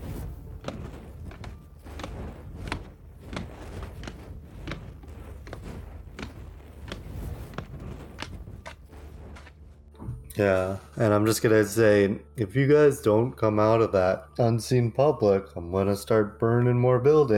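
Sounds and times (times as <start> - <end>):
footsteps walking away: 0.0 - 10.4
low rumble: 0.0 - 13.2
speech: 10.4 - 17.3.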